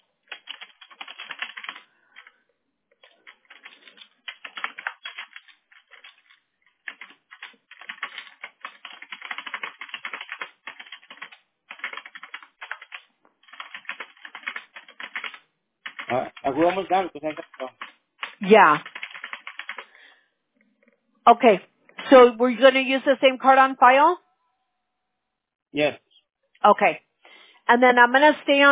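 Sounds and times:
typing a message on a computer keyboard: 0:00.2 - 0:19.9
speech: 0:16.1 - 0:17.8, 0:18.4 - 0:18.9, 0:21.3 - 0:24.2, 0:25.7 - 0:26.0, 0:26.6 - 0:27.0, 0:27.7 - 0:28.6.

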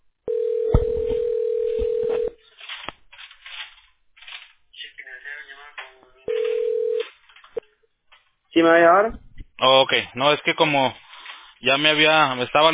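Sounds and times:
telephone ringing on company line with steady electronic tone: 0:00.3 - 0:02.4, 0:06.2 - 0:07.2
speech: 0:08.6 - 0:11.0, 0:11.6 - 0:12.7.

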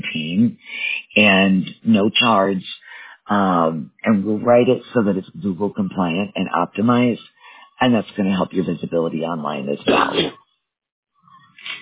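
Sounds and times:
speech: 0:01.2 - 0:02.7, 0:03.3 - 0:10.4
person sneezing: 0:09.9 - 0:10.3.

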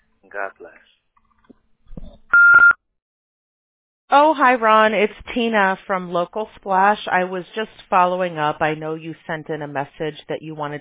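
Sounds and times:
speech: 0:00.4 - 0:01.0, 0:04.1 - 0:10.7
voicemail beep: 0:02.3 - 0:02.8.

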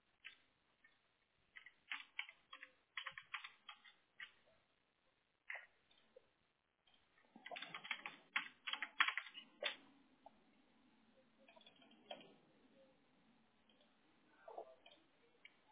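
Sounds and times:
typing on a computer keyboard: 0:00.2 - 0:04.4, 0:06.9 - 0:09.8.

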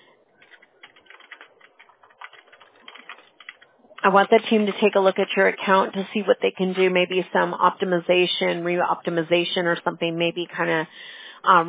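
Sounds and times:
typing on a computer keyboard: 0:00.3 - 0:05.4
speech: 0:04.0 - 0:11.6.

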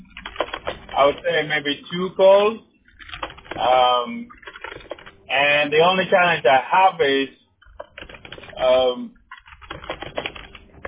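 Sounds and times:
typing on a computer keyboard: 0:00.0 - 0:01.4, 0:02.9 - 0:05.3, 0:07.6 - 0:10.8
speech: 0:01.0 - 0:02.7, 0:03.6 - 0:04.4, 0:05.3 - 0:07.4, 0:08.6 - 0:09.2.

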